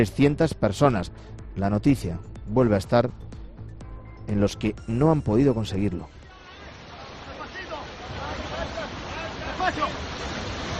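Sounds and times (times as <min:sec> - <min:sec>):
speech: 0:00.0 - 0:03.3, 0:04.3 - 0:06.2
wind over the sea near Órzola on Lanzarote: 0:03.8 - 0:10.7
people shouting during a sea rescue attempt: 0:06.2 - 0:10.0
roaring surf near the port of Órzola on Lanzarote: 0:06.5 - 0:10.7.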